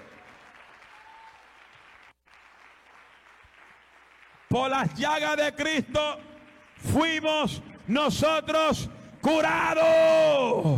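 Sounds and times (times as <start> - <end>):
audience applauding: 0.0 - 7.6
speech: 4.5 - 10.7.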